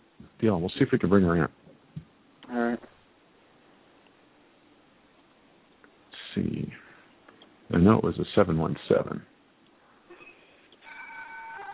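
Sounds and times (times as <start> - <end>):
speech: 0.4 - 1.6, 8.0 - 9.3
clock chiming: 10.8 - 11.7.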